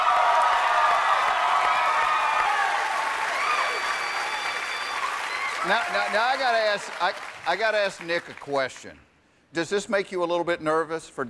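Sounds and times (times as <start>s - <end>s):
crowd of fans whooping and shouting: 0.0s - 6.5s
crowd of fans clapping: 0.0s - 8.9s
speech: 5.6s - 11.2s.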